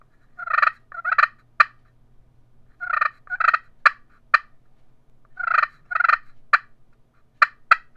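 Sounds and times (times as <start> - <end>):
turkey clucking and purring: 0.4 - 1.8, 2.8 - 4.5, 5.3 - 6.7.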